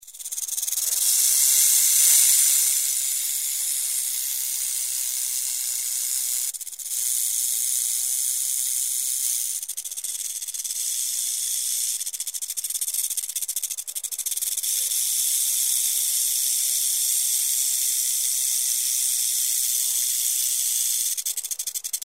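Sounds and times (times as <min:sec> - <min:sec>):
rattlesnake hissing: 0:00.0 - 0:22.0.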